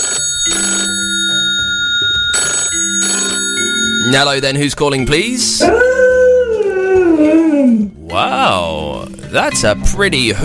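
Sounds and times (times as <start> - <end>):
telephone ringing in bright bursts: 0.0 - 5.6
speech: 4.1 - 6.0, 7.2 - 10.4.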